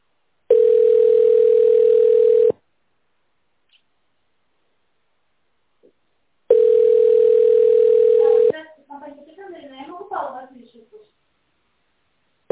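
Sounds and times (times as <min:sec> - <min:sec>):
person answering phone: 0:00.5 - 0:02.6, 0:06.5 - 0:08.6
telephone ringback tone while a call connects to a company line: 0:00.5 - 0:02.6, 0:06.5 - 0:08.5.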